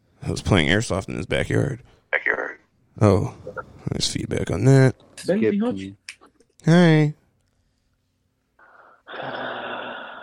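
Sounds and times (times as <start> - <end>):
speech: 0.3 - 2.0, 3.0 - 6.0, 6.6 - 7.2
heavy breathing: 8.6 - 10.2.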